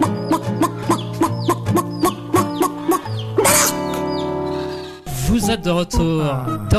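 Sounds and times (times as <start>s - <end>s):
two people imitating clucking hens: 0.0s - 4.0s
sustained musical background: 0.0s - 6.7s
speech: 5.5s - 6.7s.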